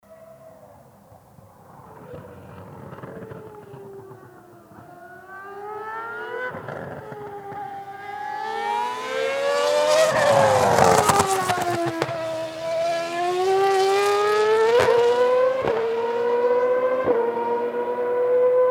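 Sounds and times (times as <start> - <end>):
Mercedes W02 F1 car accelerating fast out of chicane: 1.9 - 18.6.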